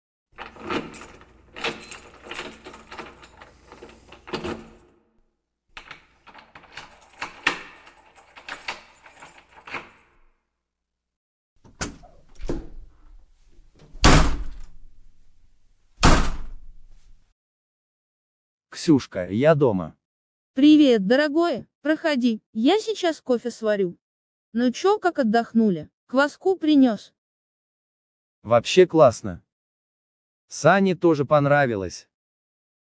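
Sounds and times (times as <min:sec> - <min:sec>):
keys jangling and rattling in an apartment door lock: 0:00.4 - 0:04.8, 0:05.8 - 0:10.3
apartment door swinging and shutting: 0:13.9 - 0:14.8, 0:16.0 - 0:16.7
speech: 0:18.8 - 0:20.0, 0:20.6 - 0:27.2, 0:28.4 - 0:29.4, 0:30.5 - 0:32.1.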